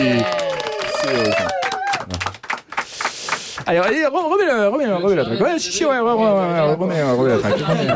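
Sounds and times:
audience applause for broadcast participants: 0.0s - 4.0s
speech: 3.7s - 7.9s
laughter: 7.0s - 7.9s.

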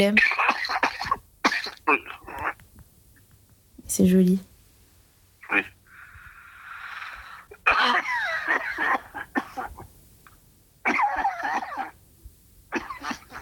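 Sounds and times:
speech: 0.0s - 0.9s, 1.9s - 2.2s, 3.9s - 4.5s, 5.5s - 5.8s
heavy wet coughing: 0.0s - 2.6s, 7.5s - 9.9s, 10.8s - 12.0s, 12.7s - 13.4s
raspy breaths: 5.8s - 9.8s.

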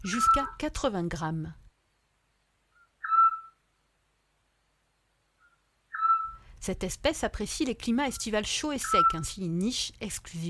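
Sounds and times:
Eurasian scops owl whistling call: 0.0s - 0.6s, 2.7s - 3.6s, 5.4s - 6.4s, 8.8s - 9.3s
speech: 0.0s - 1.6s, 6.6s - 10.4s.

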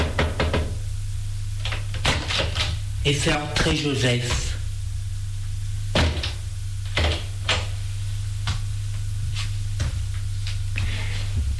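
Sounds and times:
knocking on a door: 0.0s - 0.8s
steady low hum: 0.0s - 11.5s
speech: 3.0s - 4.5s.

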